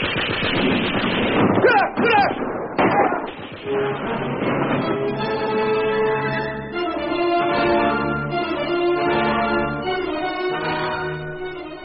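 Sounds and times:
heavy and light machine gun fire: 0.0s - 7.2s
droning tonal backdrop: 3.4s - 11.8s.

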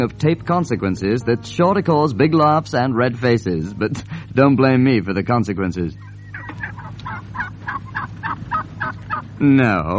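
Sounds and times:
speech: 0.0s - 6.1s, 9.4s - 9.9s
steady low hum: 0.0s - 9.9s
flock of turkeys gobbling: 5.8s - 9.5s.

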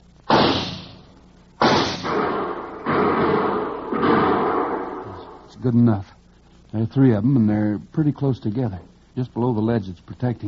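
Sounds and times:
gunshots fired in a standoff by men sheltering behind a ledge: 0.3s - 5.5s
speech: 5.6s - 10.4s.

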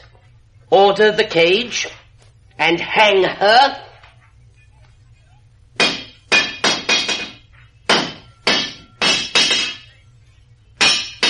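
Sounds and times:
speech: 0.7s - 2.0s, 2.6s - 3.9s
blacksmith's hammer striking metal with metallic clang: 5.8s - 10.0s, 10.8s - 11.2s.

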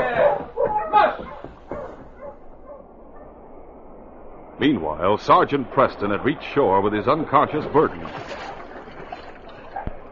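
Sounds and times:
Malamute sled dog barking: 0.0s - 3.4s, 8.3s - 8.7s, 9.6s - 10.1s
hiss: 0.0s - 8.1s
speech: 4.6s - 8.4s.

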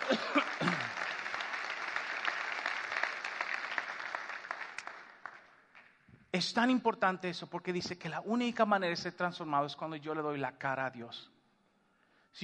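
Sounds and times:
audience applauding: 0.0s - 6.0s
speech: 0.1s - 0.4s, 6.4s - 11.3s.

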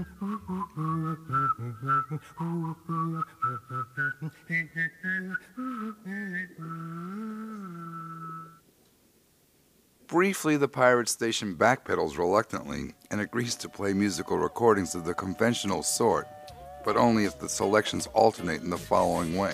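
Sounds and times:
speech: 0.0s - 5.4s, 10.2s - 19.5s
person whistling short choppy notes: 0.0s - 8.6s, 13.6s - 17.7s.

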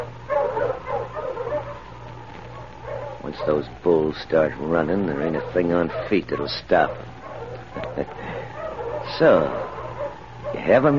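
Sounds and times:
sled huskies barking and yipping: 0.0s - 10.9s
steady low hum: 0.0s - 10.9s
speech: 3.4s - 7.1s, 8.0s - 8.2s, 9.1s - 9.7s, 10.6s - 10.9s.

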